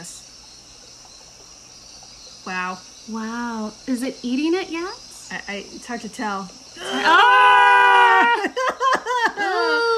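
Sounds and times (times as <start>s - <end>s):
speech: 2.4s - 7.3s
person screaming: 6.8s - 8.5s
laughter: 8.0s - 9.9s.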